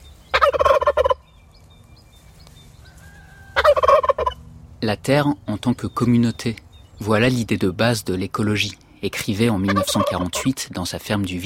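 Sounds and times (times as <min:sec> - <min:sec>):
turkeys gobbling in an orchard meadow: 0:00.3 - 0:01.3, 0:02.8 - 0:04.5, 0:08.7 - 0:10.6
speech: 0:04.8 - 0:11.4.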